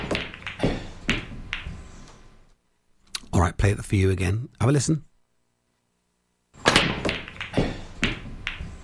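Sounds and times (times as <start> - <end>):
pool balls clacking on a pool table after a break: 0.0 - 1.8, 6.6 - 8.8
speech: 3.4 - 5.1.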